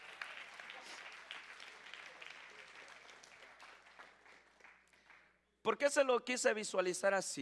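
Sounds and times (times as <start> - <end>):
audience applause: 0.0 - 5.3
speech: 5.7 - 7.4.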